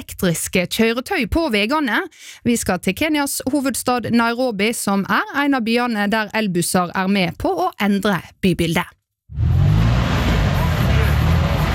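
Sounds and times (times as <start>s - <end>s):
speech: 0.1s - 9.6s
engines of idling and moving vehicles rumbling in busy street traffic in central Nairobi Kenya: 9.4s - 11.7s.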